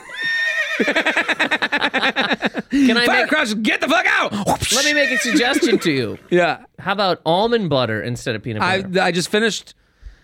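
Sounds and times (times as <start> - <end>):
horse neighing: 0.0 - 1.1, 4.6 - 6.4
laughter: 0.0 - 3.3, 4.8 - 6.3
speech: 0.8 - 9.8.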